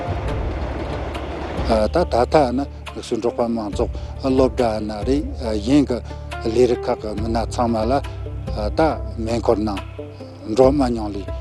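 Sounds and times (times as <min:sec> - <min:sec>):
train roaring past, heavy wheels on rails: 0:00.0 - 0:02.1
speech: 0:01.7 - 0:11.3.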